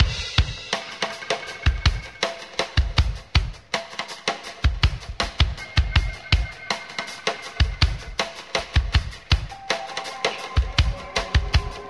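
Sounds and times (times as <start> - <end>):
funky drum loop: 0.0 - 11.8.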